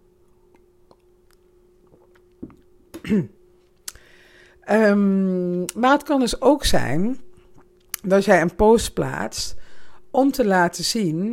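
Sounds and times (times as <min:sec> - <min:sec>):
steady low hum: 0:00.0 - 0:11.3
person sipping a drink: 0:00.5 - 0:02.6
speech: 0:03.1 - 0:03.4, 0:04.7 - 0:07.2, 0:08.0 - 0:11.3.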